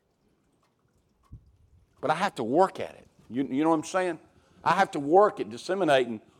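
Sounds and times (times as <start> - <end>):
soft drip of water: 0.0 - 4.7
rainwater flowing and dripping from pipes: 0.0 - 5.7
speech: 2.0 - 6.3.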